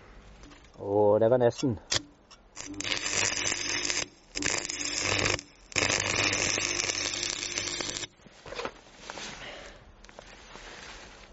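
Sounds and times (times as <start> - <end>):
speech: 0.8 - 2.0
welding machine crackling and sizzling: 1.9 - 8.2.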